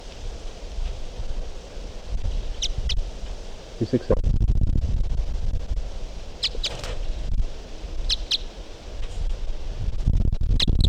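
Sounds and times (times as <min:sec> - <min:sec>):
wind and rustling: 0:00.0 - 0:10.8
bird chirping: 0:02.5 - 0:03.0, 0:06.4 - 0:06.8, 0:08.0 - 0:08.6
speech: 0:03.8 - 0:04.3.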